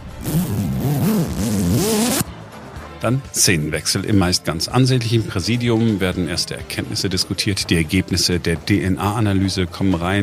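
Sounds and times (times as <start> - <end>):
body bag zipper pulled shut: 0.0 - 2.3
speech: 3.0 - 10.2.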